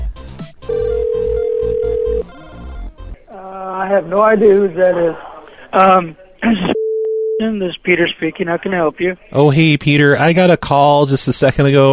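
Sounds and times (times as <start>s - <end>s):
low busy musical background: 0.0s - 3.3s
telephone ringback tone on an outgoing call: 0.7s - 2.3s
speech: 4.0s - 6.8s, 7.4s - 11.9s.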